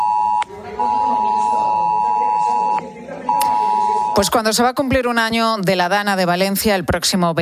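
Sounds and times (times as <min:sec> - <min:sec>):
mobile phone emergency alert alarm blaring: 0:00.0 - 0:04.4
speech: 0:04.2 - 0:07.4.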